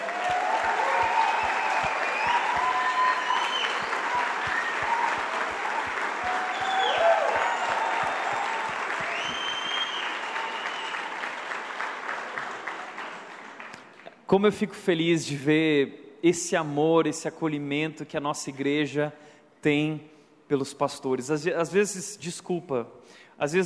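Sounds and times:
congregation cheers and whoops: 0:00.0 - 0:11.6
congregation applauding: 0:00.0 - 0:14.2
speech: 0:14.3 - 0:23.6.

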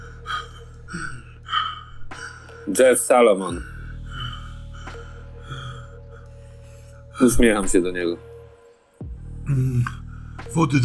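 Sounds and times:
voice imitating heavy panting of an old man: 0:00.0 - 0:02.7, 0:03.6 - 0:07.0
speech: 0:02.7 - 0:03.7, 0:07.2 - 0:08.3, 0:09.5 - 0:09.9, 0:10.6 - 0:10.8.

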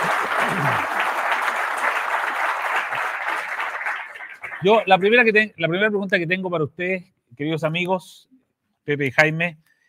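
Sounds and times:
audience applauding: 0:00.0 - 0:05.3
speech: 0:04.6 - 0:09.7.

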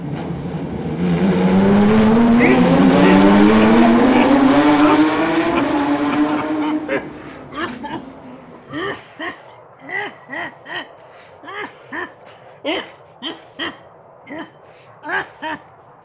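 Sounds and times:
race car engines roaring past on a track: 0:00.0 - 0:08.8
laughter: 0:01.8 - 0:15.7.

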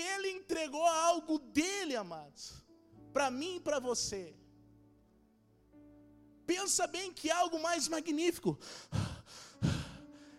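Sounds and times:
speech: 0:00.4 - 0:04.4, 0:06.5 - 0:09.7
deep airy breaths drawn in: 0:08.6 - 0:10.3.

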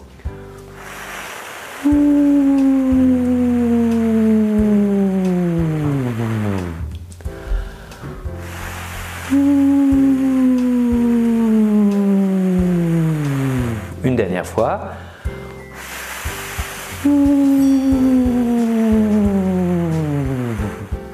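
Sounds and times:
soft low music: 0:00.0 - 0:21.1
speech: 0:01.8 - 0:02.2
voice sliding in a descending siren-like glide as a vocal exercise: 0:01.8 - 0:06.8, 0:09.3 - 0:13.8, 0:17.0 - 0:20.7
voice imitating wind as a vocal exercise: 0:01.8 - 0:06.9, 0:09.2 - 0:13.9, 0:16.9 - 0:21.0.

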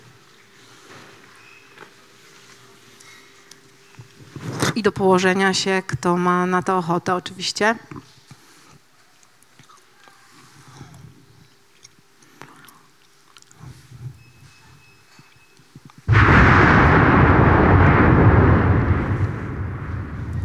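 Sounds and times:
faint clicks and rustles: 0:00.0 - 0:04.8, 0:07.8 - 0:16.1
speech: 0:04.8 - 0:08.0
volcanic eruption rumbling: 0:16.1 - 0:20.4.

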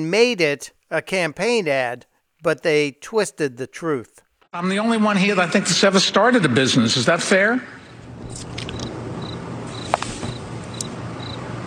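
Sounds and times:
speech: 0:00.0 - 0:07.8
cricket chirping: 0:07.8 - 0:11.6.

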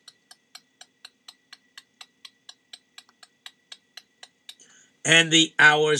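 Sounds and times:
clock ticking: 0:00.0 - 0:04.8
speech: 0:05.0 - 0:05.9.

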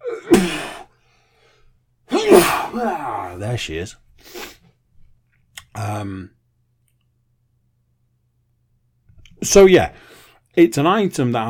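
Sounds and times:
loud sneezes: 0:00.0 - 0:00.9, 0:02.1 - 0:03.3
speech: 0:02.8 - 0:04.4, 0:05.8 - 0:06.4, 0:09.4 - 0:11.4.

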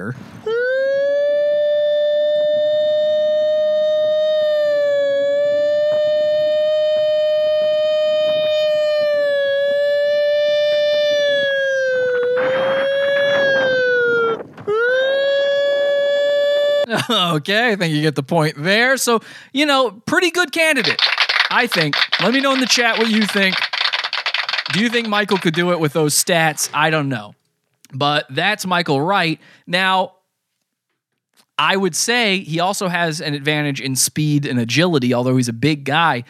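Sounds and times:
speech: 0:00.0 - 0:00.6, 0:17.0 - 0:23.7, 0:24.7 - 0:30.2, 0:31.6 - 0:36.2
man riding a bike imitating a siren with his voice: 0:00.4 - 0:16.9
laughter: 0:16.8 - 0:17.4.

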